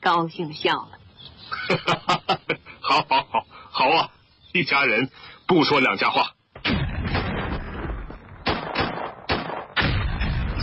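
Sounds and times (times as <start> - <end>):
speech: 0.1 - 6.4
laughter: 1.5 - 3.4
heavy artillery fire booming: 6.6 - 10.6.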